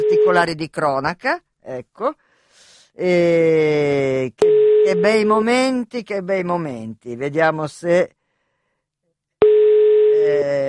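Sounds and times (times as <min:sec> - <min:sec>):
telephone ringing tone during a call: 0:00.0 - 0:00.5, 0:04.4 - 0:05.3, 0:09.4 - 0:10.3
speech: 0:00.1 - 0:02.2, 0:03.0 - 0:08.2, 0:10.2 - 0:10.6.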